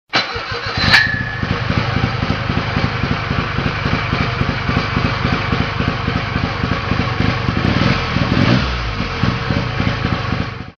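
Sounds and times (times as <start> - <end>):
Wankel rotary engine motorcycles: 0.2 - 10.7.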